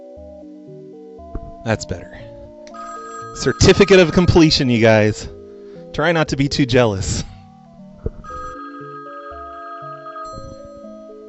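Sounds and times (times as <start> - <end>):
speech: 1.6 - 2.3, 3.4 - 5.4, 6.0 - 7.3
electronic telephone ringing with an incoming call-in caller: 2.7 - 5.4, 8.1 - 11.2.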